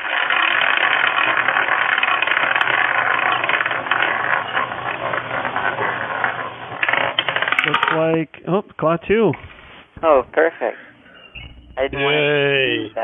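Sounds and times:
wheel spun to pick someone at random with a ball rolling around it: 0:00.0 - 0:08.0
speech: 0:08.0 - 0:10.9, 0:11.8 - 0:13.0.

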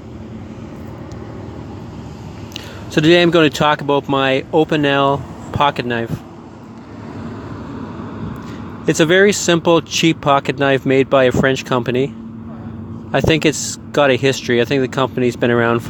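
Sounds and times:
low rumble of downtown city street traffic: 0:00.0 - 0:15.8
speech: 0:02.9 - 0:06.3, 0:08.8 - 0:12.2, 0:13.1 - 0:15.8.

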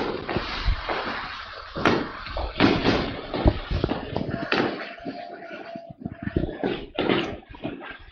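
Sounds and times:
New Year's fireworks popping and cracking outside a house: 0:00.0 - 0:07.8
faint voices of people hollering: 0:03.9 - 0:07.0.

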